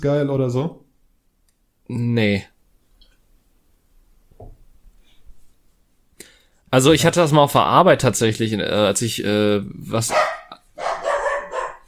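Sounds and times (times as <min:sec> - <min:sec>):
speech: 0:00.0 - 0:00.8, 0:01.9 - 0:02.5, 0:06.7 - 0:10.4
dog barking: 0:10.1 - 0:11.8.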